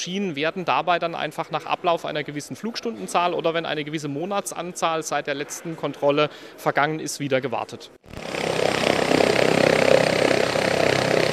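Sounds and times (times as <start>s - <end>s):
speech: 0.0s - 8.4s
helicopter engine and rotor running during test: 8.1s - 11.3s.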